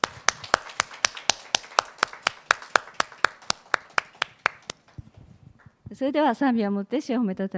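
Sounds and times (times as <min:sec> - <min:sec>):
audience applause: 0:00.0 - 0:05.0
speech: 0:06.0 - 0:07.5.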